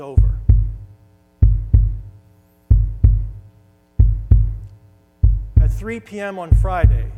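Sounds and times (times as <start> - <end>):
speech: 0.0 - 0.4, 5.8 - 7.1
deep heartbeat thumping in lub-dub pairs: 0.0 - 7.1
faint low hum: 0.0 - 7.1.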